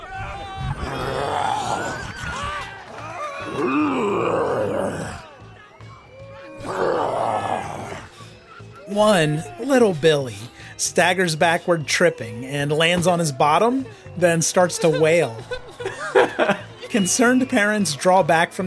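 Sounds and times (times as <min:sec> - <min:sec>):
person roaring, growling and screaming like a monster: 0:00.7 - 0:02.2, 0:03.1 - 0:05.3, 0:06.6 - 0:08.1
laughter: 0:06.4 - 0:09.8, 0:13.6 - 0:18.6
speech: 0:09.0 - 0:15.6, 0:16.5 - 0:18.6.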